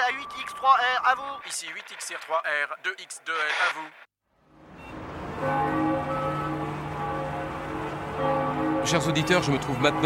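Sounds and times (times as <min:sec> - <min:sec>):
speech: 0:00.1 - 0:04.1, 0:08.9 - 0:10.0
church bells ringing over a city as a warning to leave: 0:05.2 - 0:10.0.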